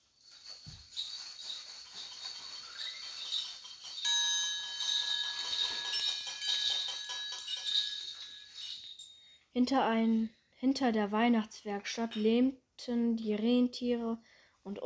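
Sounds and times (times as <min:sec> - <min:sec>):
bright Christmas bells chiming and tinkling: 0:00.2 - 0:09.4
speech: 0:09.6 - 0:14.8.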